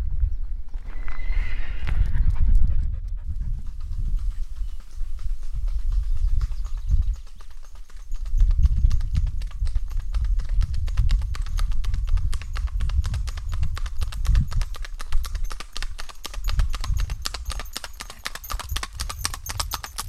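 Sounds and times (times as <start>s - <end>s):
low rumbling ground noise: 0.0s - 7.1s
horse hooves clip-clopping at a walking rhythm: 1.9s - 20.0s.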